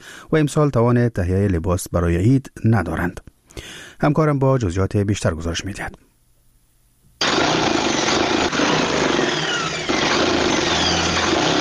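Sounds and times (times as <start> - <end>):
speech: 0.3 - 6.1
tailor's sewing machine whirring while sewing Eid clothes in Kabul: 7.2 - 11.5.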